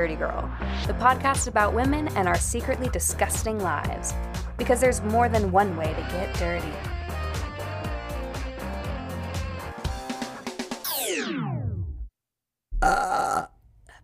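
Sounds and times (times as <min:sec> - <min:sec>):
speech: 0:00.0 - 0:06.9
rhythmic music ending in a sweeping downward slide: 0:00.6 - 0:11.3
loud short burp: 0:12.8 - 0:13.6.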